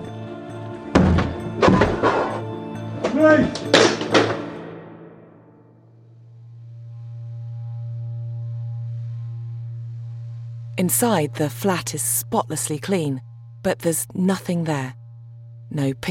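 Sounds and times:
door being smashed down: 0.9s - 2.4s, 3.5s - 4.6s
speech: 3.2s - 3.9s, 10.9s - 15.0s, 15.7s - 16.1s
low steady hum: 6.0s - 16.1s.

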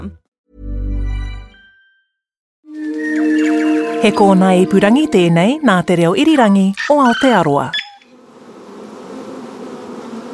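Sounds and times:
speech: 0.0s - 0.2s, 4.0s - 7.8s
many honeybees buzzing around a hive: 2.9s - 10.3s.

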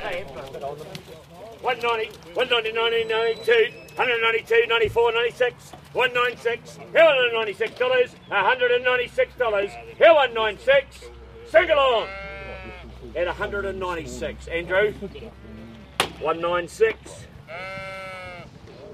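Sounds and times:
speech: 0.5s - 12.3s, 13.2s - 15.4s, 16.2s - 17.9s
yearling sheep bleating in a sale pen at a livestock sale: 11.6s - 13.4s, 17.4s - 18.5s.

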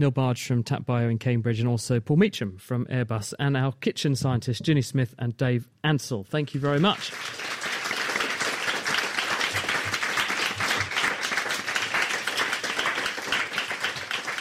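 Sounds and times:
speech: 0.0s - 7.5s
audience at the Cambridge Science Centre applauding: 6.5s - 14.3s.

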